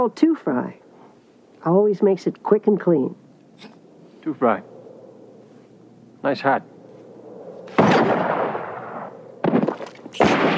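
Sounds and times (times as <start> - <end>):
speech: 0.0 - 0.8, 1.6 - 4.7, 6.2 - 6.7
booming gunshots with rumbling echo in a movie gunfight: 7.7 - 10.5.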